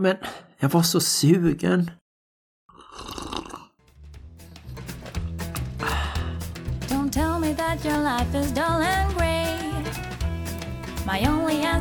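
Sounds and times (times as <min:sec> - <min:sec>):
speech: 0:00.0 - 0:02.0, 0:07.6 - 0:09.2, 0:11.1 - 0:11.7
slurping coffee from a cup: 0:02.7 - 0:03.8
upbeat music with a steady beat: 0:04.0 - 0:11.7.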